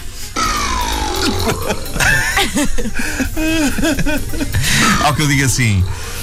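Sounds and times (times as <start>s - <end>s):
synthesized burp sound effect: 0.4s - 2.4s
laughter: 1.1s - 5.3s
speech: 1.5s - 6.2s.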